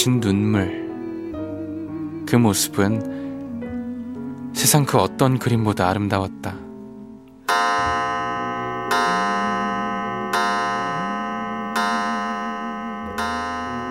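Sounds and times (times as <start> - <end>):
speech: 0.0 - 0.8, 2.3 - 3.2, 4.6 - 6.6
clock chiming five o'clock: 7.5 - 13.8.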